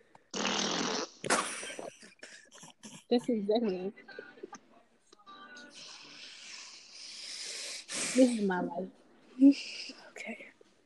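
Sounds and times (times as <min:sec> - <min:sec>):
fart-like noise: 0:00.3 - 0:01.9
speech: 0:03.1 - 0:04.1, 0:08.2 - 0:10.4.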